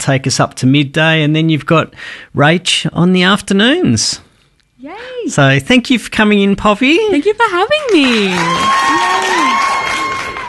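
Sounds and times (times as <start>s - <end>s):
speech: 0.0s - 9.6s
crowd cheering and applause sound effect: 7.8s - 10.4s
crowd shouting: 8.4s - 10.4s.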